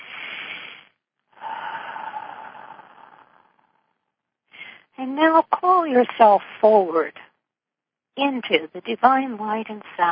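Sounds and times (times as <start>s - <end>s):
deep breathing: 0.0s - 5.0s
speech: 5.1s - 7.2s, 8.2s - 10.1s.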